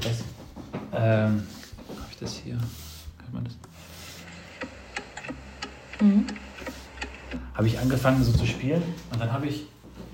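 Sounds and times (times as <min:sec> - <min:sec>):
speech: 0:00.9 - 0:01.6, 0:02.2 - 0:03.9, 0:06.0 - 0:06.4, 0:07.6 - 0:09.8
clock ticking: 0:04.2 - 0:08.2.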